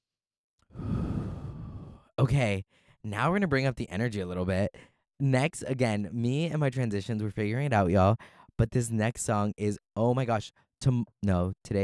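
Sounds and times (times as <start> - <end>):
deep breath in and out: 0.7 - 3.0, 4.8 - 5.0, 8.2 - 8.5
speech: 2.2 - 11.8.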